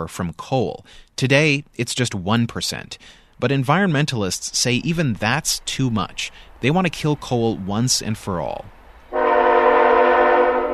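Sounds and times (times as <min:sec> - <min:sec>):
speech: 0:00.0 - 0:08.8
coal train horn blast: 0:09.1 - 0:10.7.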